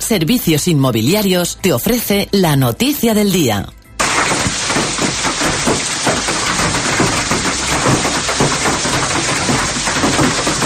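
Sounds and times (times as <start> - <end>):
speech: 0.1 - 3.8
heavy storm rain pouring in Castellón province: 4.0 - 10.6.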